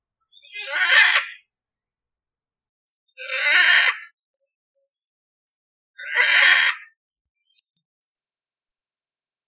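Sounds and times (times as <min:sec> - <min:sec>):
macaw squawking harshly: 0:00.4 - 0:01.4, 0:06.0 - 0:06.9.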